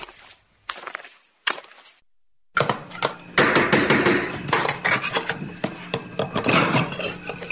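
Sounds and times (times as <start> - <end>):
pots and pans clattering in a busy kitchen: 2.6 - 7.4
dishes and utensils clinking and banging: 4.1 - 7.4.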